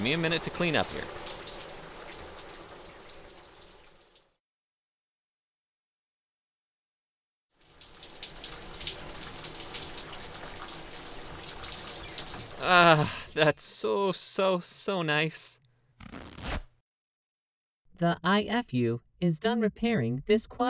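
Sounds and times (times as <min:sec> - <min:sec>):
speech: 0:00.0 - 0:01.4, 0:12.9 - 0:16.2, 0:18.0 - 0:20.6
shower water aboard a ship spraying: 0:00.0 - 0:04.2, 0:07.6 - 0:12.8.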